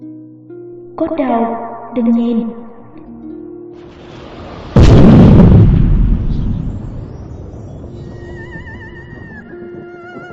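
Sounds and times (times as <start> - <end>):
speech: 1.0 - 2.6
huge explosion with long rumbling decay: 4.1 - 9.3.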